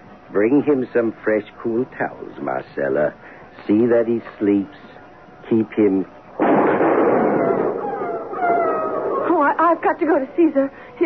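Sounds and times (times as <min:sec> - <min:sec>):
speech: 0:00.3 - 0:04.9, 0:05.5 - 0:06.7, 0:09.7 - 0:11.0
gunshot: 0:06.4 - 0:07.8
wolf howling: 0:07.1 - 0:09.6.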